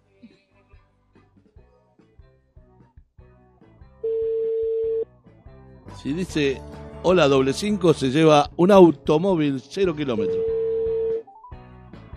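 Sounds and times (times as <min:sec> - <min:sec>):
outgoing telephone call ringing tone: 0:04.0 - 0:05.0, 0:10.2 - 0:11.3
speech: 0:06.0 - 0:10.5.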